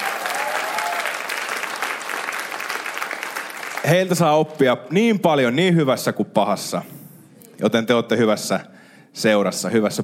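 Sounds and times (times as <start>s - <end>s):
large audience applause: 0.0s - 4.2s
speech: 3.8s - 7.0s, 7.6s - 10.0s.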